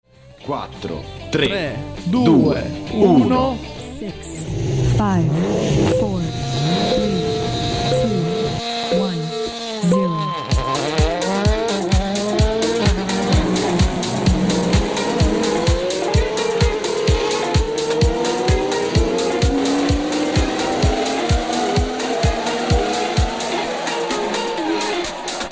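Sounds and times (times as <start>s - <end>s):
speech: 0.5s - 7.4s
Formula 1 V12 and V10 race car engines screaming: 2.7s - 25.5s
tire squeal: 5.4s - 25.5s.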